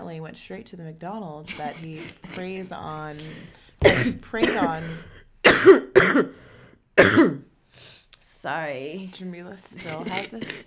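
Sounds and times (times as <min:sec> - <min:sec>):
speech: 0:00.1 - 0:07.5, 0:08.4 - 0:10.6
person coughing harshly: 0:01.5 - 0:02.6, 0:03.2 - 0:06.4, 0:07.0 - 0:07.4, 0:09.8 - 0:10.6.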